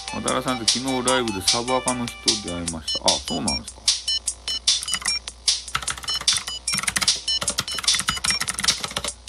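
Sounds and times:
speech: 0:00.1 - 0:03.9
mechanical gaming keyboard typing: 0:04.8 - 0:05.2, 0:05.7 - 0:09.1.

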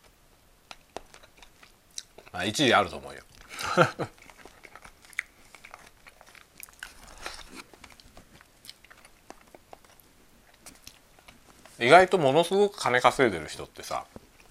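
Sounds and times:
person chewing while eating a convenience store bento: 0:00.6 - 0:11.8, 0:14.1 - 0:14.5
speech: 0:02.4 - 0:04.2, 0:11.8 - 0:14.2.

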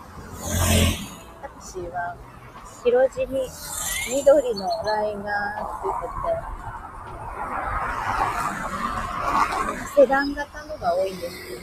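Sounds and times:
busy street traffic: 0:00.0 - 0:11.6
cars passing: 0:00.0 - 0:11.6
speech: 0:01.8 - 0:06.6, 0:09.7 - 0:11.6.

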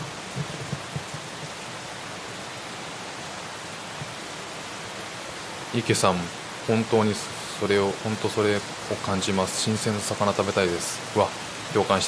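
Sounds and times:
faint low knocks: 0:00.0 - 0:01.6
heavy rain pouring: 0:00.0 - 0:12.0
speech: 0:05.7 - 0:12.0.

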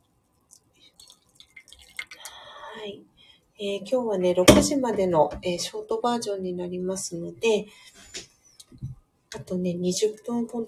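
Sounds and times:
organic coffee poured from a coffee bottle into a warmed mug: 0:00.5 - 0:02.5
speech: 0:02.8 - 0:08.0, 0:09.5 - 0:10.6.

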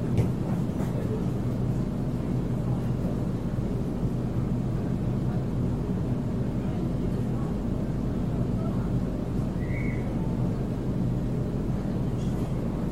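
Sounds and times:
commuter train rumbling into Sydney city: 0:00.0 - 0:12.9
faint train squeal: 0:09.6 - 0:10.2.

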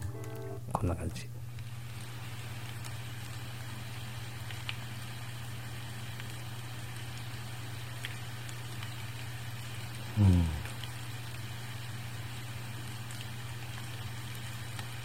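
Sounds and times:
low hum: 0:00.0 - 0:15.0
speech: 0:00.8 - 0:01.4, 0:10.2 - 0:10.6
steady rain: 0:01.5 - 0:15.0
brief murmuring voice: 0:10.1 - 0:10.8.

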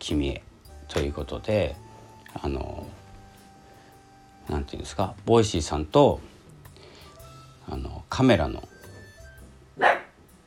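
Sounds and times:
speech: 0:00.0 - 0:03.0, 0:04.5 - 0:06.3, 0:07.7 - 0:08.7
household dog barking at footsteps: 0:09.8 - 0:10.2.

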